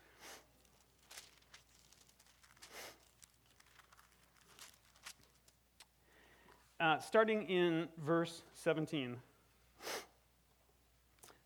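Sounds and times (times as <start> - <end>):
speech: 6.8 - 9.3
person sniffling: 9.8 - 10.2.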